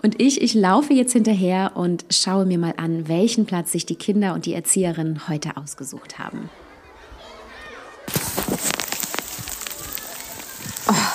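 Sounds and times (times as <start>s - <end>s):
speech: 0.0s - 6.6s
louder rustle: 8.1s - 11.1s
small hailstones striking leaves and ground in a forest: 8.1s - 11.1s
steady rain pattering in a forest on a cold wet day: 8.1s - 11.1s.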